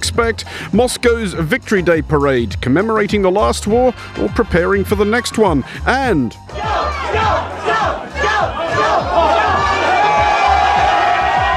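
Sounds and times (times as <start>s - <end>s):
speech: 0.1s - 9.5s
rhythmic pulses like chanting or stamping: 6.4s - 11.5s
large crowd cheering and roaring: 6.5s - 11.5s.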